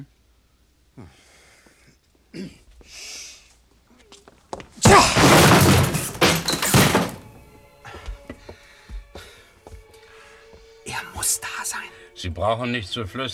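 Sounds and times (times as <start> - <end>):
speech: 2.3 - 3.1, 12.2 - 13.3
heavy thud: 4.9 - 7.6.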